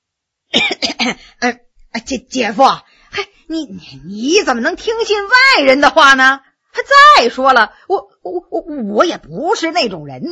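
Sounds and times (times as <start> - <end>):
man coughing: 0.6 - 1.3
speech: 1.0 - 10.3.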